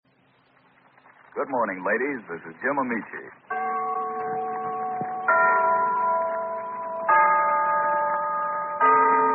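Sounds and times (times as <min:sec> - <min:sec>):
speech: 0:01.4 - 0:03.6
town hall clock chiming: 0:03.5 - 0:09.3.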